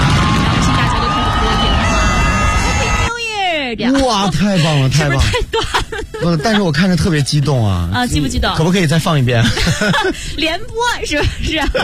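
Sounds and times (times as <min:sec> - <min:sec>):
crowd cheering and shouting at a New Year's Eve countdown celebration: 0:00.0 - 0:03.6
speech: 0:03.8 - 0:11.8
laughter: 0:04.2 - 0:07.7, 0:09.2 - 0:11.8.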